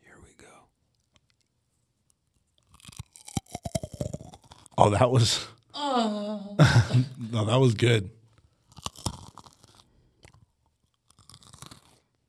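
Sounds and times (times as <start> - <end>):
crunching and chewing of a cashew cluster: 0.9 - 4.8, 8.3 - 12.2
speech: 4.8 - 6.2, 6.8 - 8.2
laughter: 4.8 - 8.0.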